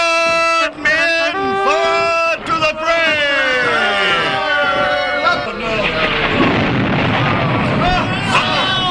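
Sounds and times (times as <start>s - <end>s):
crowd din: 0.1s - 8.8s
people shouting: 0.7s - 6.0s, 7.8s - 8.8s
thunder crashes with lightning strikes: 2.3s - 8.8s.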